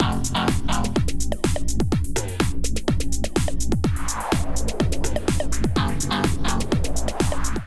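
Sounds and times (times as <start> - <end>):
drum kit groove at 125 bpm: 0.0 - 7.6.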